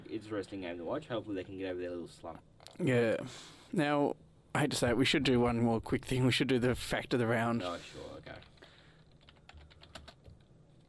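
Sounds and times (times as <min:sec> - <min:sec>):
speech: 0:00.2 - 0:08.6
typing on a computer keyboard during a web search: 0:08.3 - 0:10.8.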